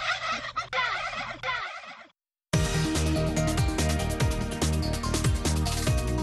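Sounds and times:
turkey gobbling: 0.0s - 2.1s
busy music with a steady beat: 2.6s - 6.2s.

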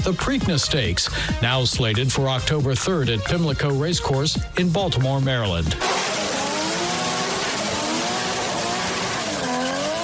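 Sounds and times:
speech: 0.0s - 6.0s
stock car racing engines roaring and revving as cars pass by: 5.8s - 10.0s.

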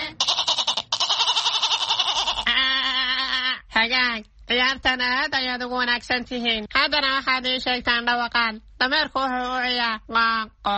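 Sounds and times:
goat bleating: 0.2s - 2.5s
speech: 3.9s - 10.7s.

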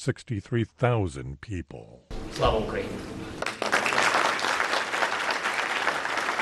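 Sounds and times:
speech: 0.0s - 3.4s
round of applause in a large hall: 3.4s - 6.3s.

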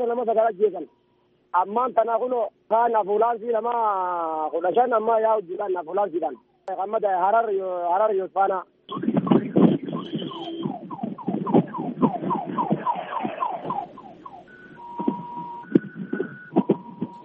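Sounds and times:
speech: 0.0s - 9.3s
electronic ambulance siren chirping and warbling: 8.9s - 17.2s.

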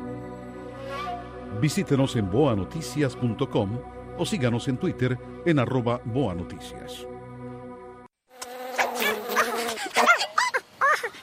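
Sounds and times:
speech: 1.6s - 7.1s
mosquito buzzing: 8.3s - 10.1s.

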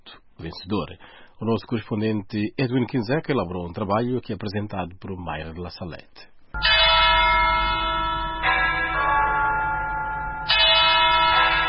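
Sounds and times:
speech: 0.4s - 6.7s
cathedral church bells ringing: 6.6s - 11.6s.

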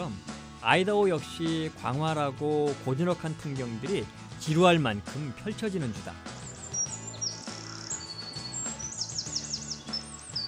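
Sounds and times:
speech: 0.6s - 6.3s
small blue birds in Idaho chirping and trilling: 5.9s - 10.4s.

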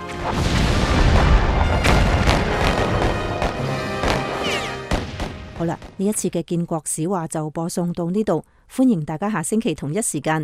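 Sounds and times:
heavy cannon fire from gunboats: 0.2s - 6.2s
speech: 5.6s - 10.4s.

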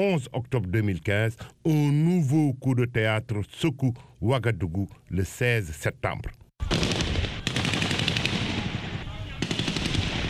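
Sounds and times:
speech: 0.0s - 6.4s
automatic gunfire during a coup in Ouagadougou: 6.6s - 10.2s.

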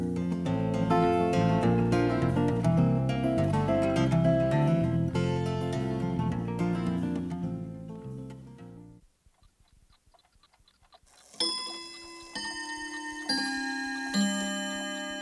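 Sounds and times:
brief musical passage: 0.0s - 9.0s, 11.4s - 15.2s
clock ticking: 9.0s - 14.4s
ringing clock chime strikes: 11.4s - 15.2s.

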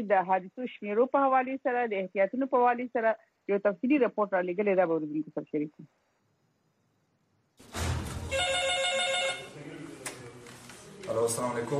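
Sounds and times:
speech: 0.0s - 6.0s, 11.1s - 11.7s
telephone ringing at an emergency medical rescue service: 8.3s - 9.6s.

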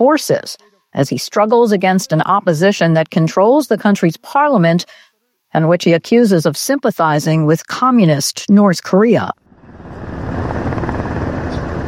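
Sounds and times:
speech: 0.0s - 9.4s
helicopters landing and circling over the National Assembly grounds in South Korea: 9.5s - 11.8s.

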